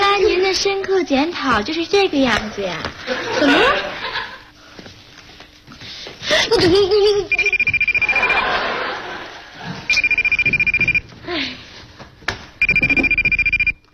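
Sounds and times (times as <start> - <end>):
speech: 0.5 - 3.9, 6.3 - 8.4
laughter: 3.0 - 4.5, 6.3 - 9.9
mobile phone pulsing electronic ringtone for an incoming call: 7.3 - 8.6, 9.9 - 11.0, 12.6 - 13.8.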